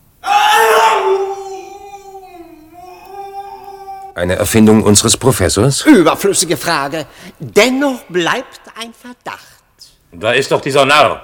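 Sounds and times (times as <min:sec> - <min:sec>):
restrained man screaming: 0:00.2 - 0:04.2
speech: 0:04.2 - 0:11.2.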